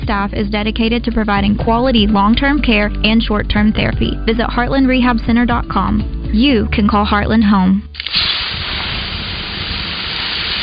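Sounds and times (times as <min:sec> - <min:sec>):
speech: 0:00.1 - 0:08.2
water poured onto 800-degree sauna rocks hissing: 0:08.0 - 0:10.6.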